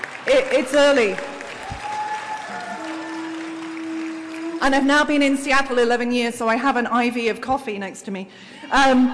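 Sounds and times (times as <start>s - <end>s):
audience clapping: 0.0s - 5.3s
speech: 0.2s - 1.3s, 4.6s - 9.1s.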